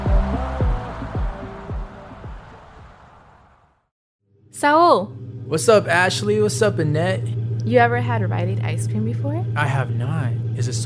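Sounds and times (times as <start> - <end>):
loud bass-heavy music booming from a car on a street: 0.0 - 2.5
speech: 4.6 - 10.8.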